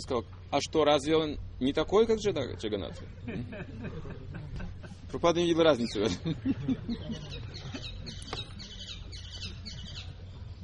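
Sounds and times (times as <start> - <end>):
speech: 0.0 - 4.4, 5.1 - 7.9
laughter: 2.8 - 8.7
flock of parrots squawking and chattering: 6.9 - 10.2.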